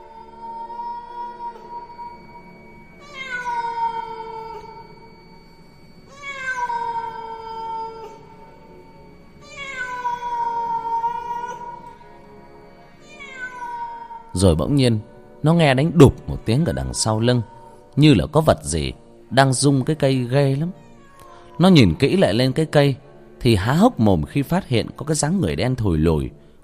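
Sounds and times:
large black cat meowing at night: 0.0 - 2.1, 3.0 - 4.9, 6.1 - 8.7, 9.4 - 12.0, 13.0 - 14.3, 16.2 - 17.8, 20.8 - 22.0
steady humming tone: 0.0 - 24.0
speech: 14.4 - 20.8, 21.6 - 26.6.

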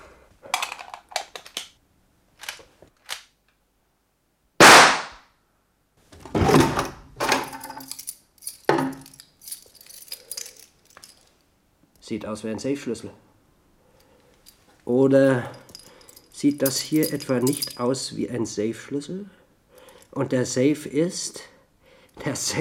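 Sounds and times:
loud sharp crack: 4.6 - 5.3
locked door in a bank director's room being worked open with clicks and metallic rattles: 6.6 - 11.2, 15.6 - 17.8
speech: 12.1 - 13.3, 15.0 - 15.6, 16.4 - 19.4, 20.2 - 21.5, 22.2 - 22.5.

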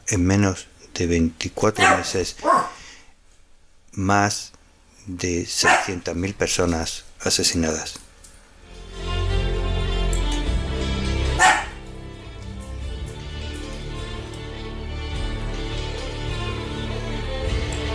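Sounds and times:
speech: 0.1 - 2.9, 4.0 - 8.0
female dog barking: 1.8 - 2.8, 5.6 - 6.0, 11.3 - 11.8
continuous droning tonal background: 8.6 - 17.9.

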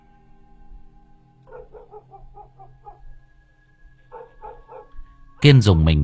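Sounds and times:
steady tonal background: 0.0 - 6.0
dog barking: 1.5 - 3.1, 4.1 - 5.0
speech: 5.4 - 6.0.

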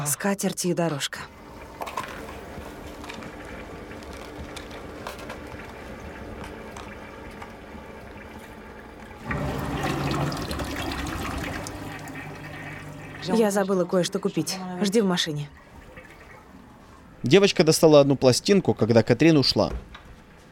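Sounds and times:
speech: 0.0 - 1.4, 13.3 - 15.6, 17.2 - 20.0
push-button toilet flush: 1.3 - 17.2.

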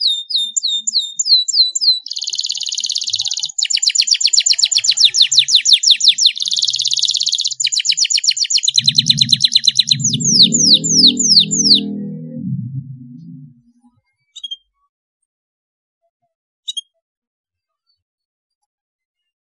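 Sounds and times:
Belgian canary trilling song with buzzy rolls and slurred whistles: 0.0 - 13.6, 14.4 - 14.7, 16.7 - 16.9.

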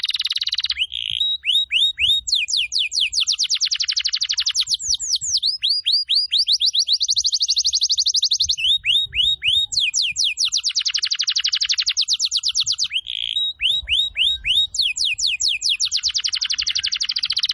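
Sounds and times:
canary song used as a lure to attract birds: 0.0 - 17.5.

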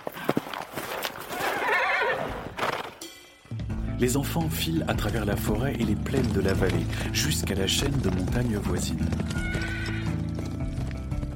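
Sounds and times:
galloping hooves: 0.0 - 3.0, 4.2 - 11.3
distant pony whinnying: 1.4 - 2.6, 9.2 - 10.3
speech: 4.0 - 9.8.

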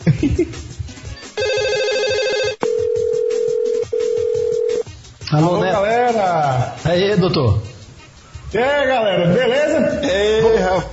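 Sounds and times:
speech: 0.1 - 0.8, 5.3 - 7.7, 8.5 - 10.9
telephone call ring tone: 1.4 - 4.8.

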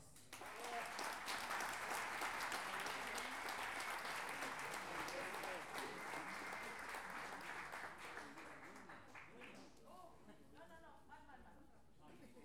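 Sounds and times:
audience applause at a contrapunto duel: 0.3 - 9.6.

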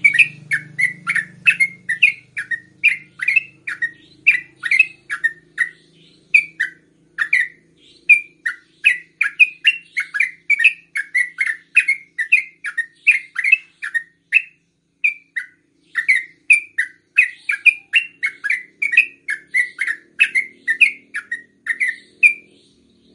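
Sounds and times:
faint low hum: 0.0 - 23.1
yellow-vented bulbul singing: 0.0 - 23.1.

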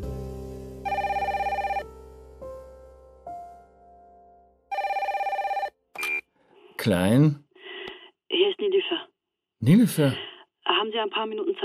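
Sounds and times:
electronic telephone ringtone with trilling bursts: 0.9 - 1.9, 4.7 - 6.2
speech: 6.8 - 7.4, 9.6 - 10.3, 10.9 - 11.6.

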